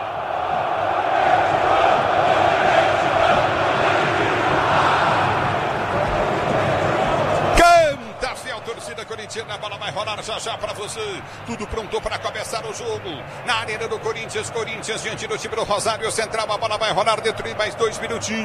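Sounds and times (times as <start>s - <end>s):
stadium crowd of football fans singing and chanting before a match: 0.0s - 18.4s
speech: 9.4s - 18.4s.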